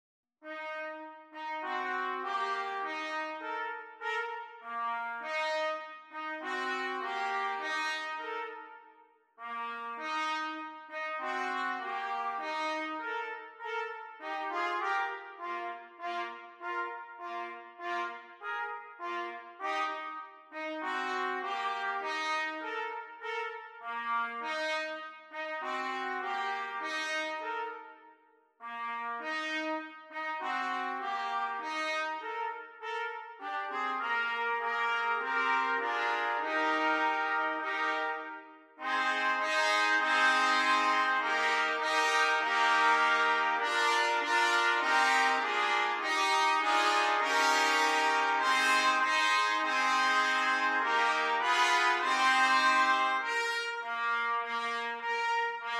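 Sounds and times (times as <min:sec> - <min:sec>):
trumpet quartet playing: 0:00.4 - 0:28.0, 0:28.6 - 0:55.7.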